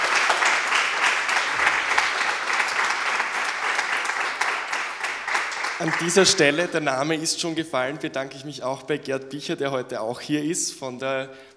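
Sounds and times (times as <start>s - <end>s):
audience applause thanking a speaker: 0.0s - 6.8s
speech: 5.8s - 11.5s.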